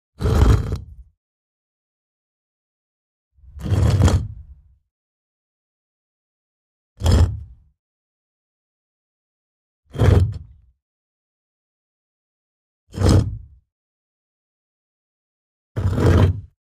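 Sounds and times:
heavy stone being pushed: 0.2 - 1.1, 3.4 - 4.6, 7.0 - 7.6, 10.0 - 10.5, 13.0 - 13.5, 15.8 - 16.6.

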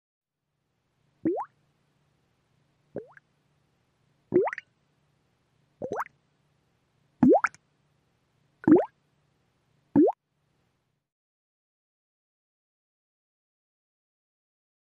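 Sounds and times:
single bubble: 1.2 - 1.5, 3.0 - 3.2, 4.3 - 4.6, 5.8 - 6.1, 7.2 - 7.6, 8.6 - 8.9, 10.0 - 10.2.

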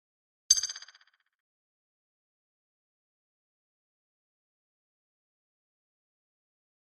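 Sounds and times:
quick electronic ping: 0.5 - 1.2.

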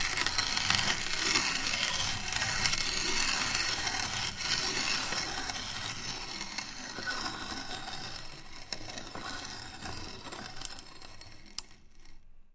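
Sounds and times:
metal grinding with slow turn: 0.0 - 12.2.

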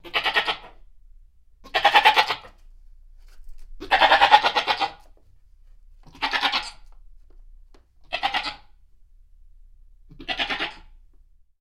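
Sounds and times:
goat bleating: 0.0 - 0.8, 1.6 - 2.6, 3.8 - 5.1, 6.0 - 6.9, 8.0 - 8.8, 10.1 - 11.0.

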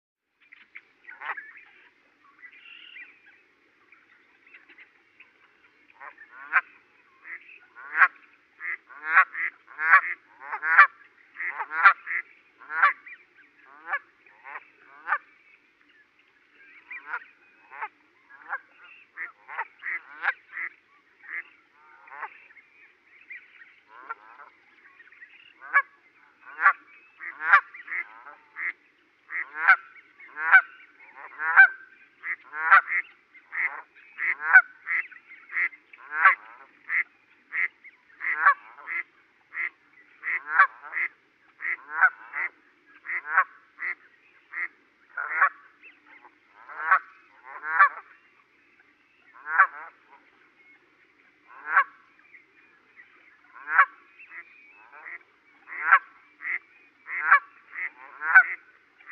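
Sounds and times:
Canada goose honking: 6.0 - 13.1, 13.7 - 15.2, 16.9 - 20.7, 23.9 - 24.6, 25.4 - 45.6, 46.6 - 48.1, 49.4 - 50.2, 51.5 - 52.0, 53.6 - 59.0.

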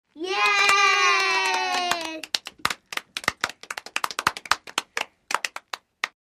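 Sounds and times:
young kids cheering: 0.2 - 2.4
young kids clapping: 0.2 - 6.2.

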